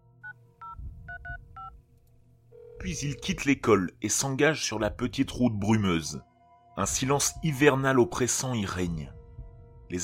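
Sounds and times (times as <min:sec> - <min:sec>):
low rumbling background: 0:00.6 - 0:03.5, 0:04.8 - 0:10.0
faint telephone ringing tone: 0:02.5 - 0:03.5
telephone keypad dialing tones: 0:02.6 - 0:03.4
speech: 0:02.8 - 0:09.2.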